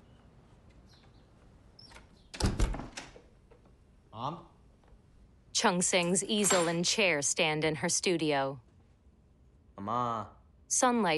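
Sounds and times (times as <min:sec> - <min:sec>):
door opening inside a home by a staircase: 0:01.8 - 0:03.7
speech: 0:04.2 - 0:04.5, 0:05.6 - 0:08.7, 0:09.8 - 0:11.1.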